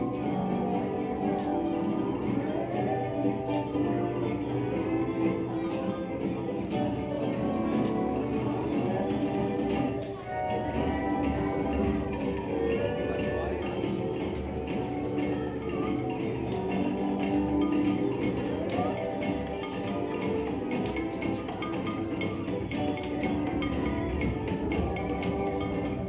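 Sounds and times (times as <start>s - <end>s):
cheerful music in an indoor boat attraction: 0.0s - 26.0s
murmuring voices: 0.0s - 26.0s.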